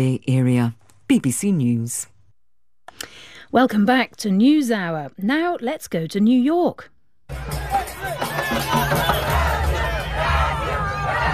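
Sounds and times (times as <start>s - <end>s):
speech: 0.0s - 2.1s, 3.5s - 8.9s
football fans chattering and shouting in a crowd: 7.3s - 11.3s.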